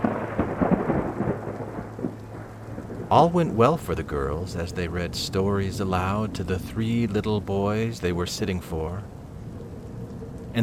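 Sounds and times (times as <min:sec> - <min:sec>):
deep continuous rumble of thunder: 0:00.0 - 0:10.6
steady hissing rain: 0:00.0 - 0:10.6
speech: 0:03.1 - 0:09.2.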